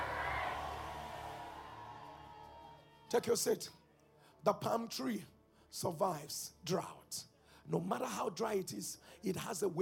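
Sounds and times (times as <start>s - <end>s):
large audience shouting amen together: 0.0s - 2.8s
speech: 3.1s - 3.8s, 4.4s - 9.8s.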